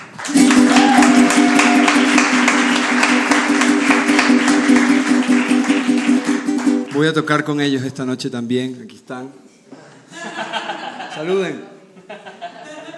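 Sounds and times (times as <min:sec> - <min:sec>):
crowd applauding at an evening music concert: 0:00.0 - 0:07.5
speech: 0:07.0 - 0:09.5, 0:11.2 - 0:11.7
laughter: 0:10.1 - 0:11.4, 0:12.0 - 0:12.9.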